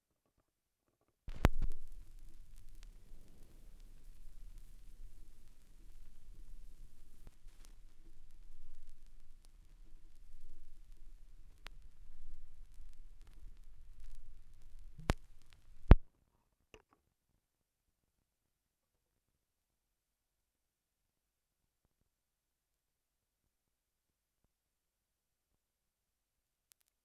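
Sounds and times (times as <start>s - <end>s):
vinyl record crackle: 1.3s - 16.0s.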